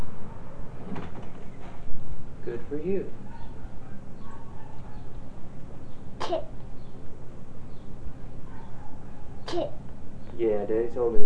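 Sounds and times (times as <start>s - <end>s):
front door rattling and thudding as a child pushes it: 0.8s - 1.9s
speech: 2.5s - 3.3s, 6.3s - 6.5s, 9.5s - 9.8s, 10.4s - 11.2s.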